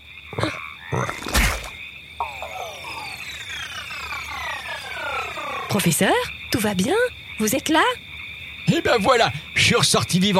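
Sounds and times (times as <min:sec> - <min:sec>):
frog croaking: 0:00.0 - 0:10.3
speech: 0:05.8 - 0:08.0, 0:08.7 - 0:10.3.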